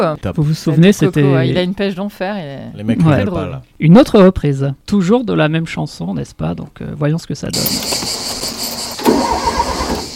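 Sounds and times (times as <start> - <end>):
speech: 0.0 - 8.1
steady hiss: 0.0 - 10.1
car engine starting: 7.6 - 10.1.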